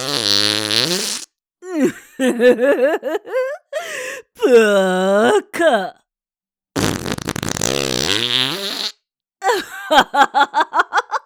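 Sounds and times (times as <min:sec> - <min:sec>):
long loud buzzing fart: 0:00.0 - 0:01.3, 0:06.8 - 0:09.0
speech: 0:01.8 - 0:03.4, 0:04.5 - 0:06.0, 0:09.9 - 0:10.6
laughter: 0:02.0 - 0:03.6, 0:09.5 - 0:11.2.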